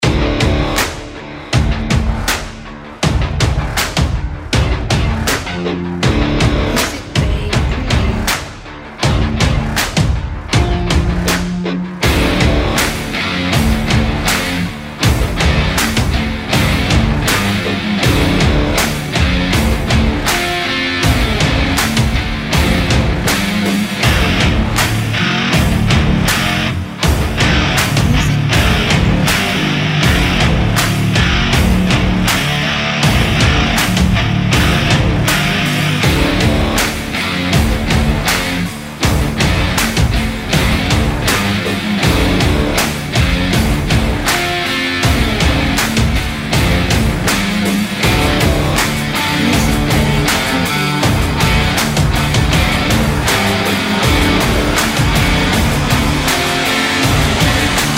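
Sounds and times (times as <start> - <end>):
epic rock drums: 0.0 - 57.9
epic rock guitars: 0.0 - 57.9.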